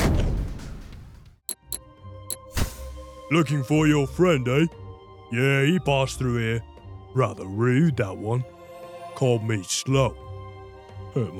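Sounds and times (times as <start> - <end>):
heavy cannon blast from a video game weapon: 0.0 - 1.0
sharp clicks: 1.5 - 1.8
speech: 3.3 - 8.6, 9.2 - 10.2, 11.1 - 11.3.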